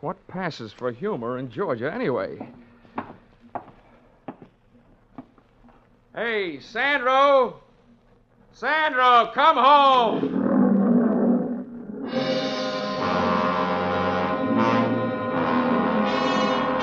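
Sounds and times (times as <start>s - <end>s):
speech: 0.0s - 2.7s, 6.2s - 7.6s, 8.6s - 10.4s
lion roaring: 9.8s - 16.7s.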